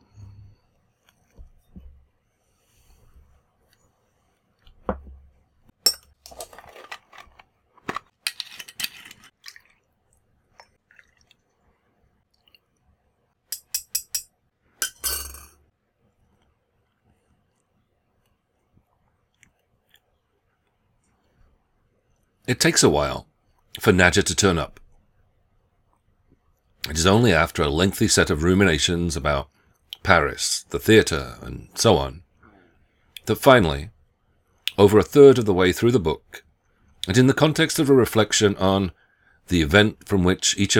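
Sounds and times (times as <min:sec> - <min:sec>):
glassware clinking while preparing a glass of absinthe: 0:05.9 - 0:06.5, 0:13.6 - 0:15.5
speech: 0:22.5 - 0:24.8, 0:26.9 - 0:32.2, 0:33.3 - 0:33.9, 0:34.8 - 0:36.4, 0:37.0 - 0:40.7.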